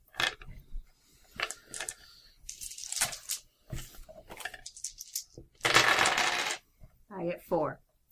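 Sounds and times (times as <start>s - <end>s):
dice rattling on a hard table: 1.4s - 3.4s, 4.3s - 6.6s
speech: 7.5s - 7.8s.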